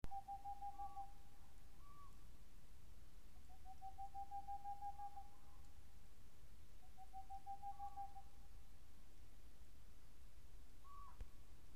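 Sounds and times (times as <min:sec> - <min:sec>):
boreal owl calling: 0:00.1 - 0:02.2, 0:03.4 - 0:05.7, 0:06.8 - 0:08.5, 0:10.8 - 0:11.3.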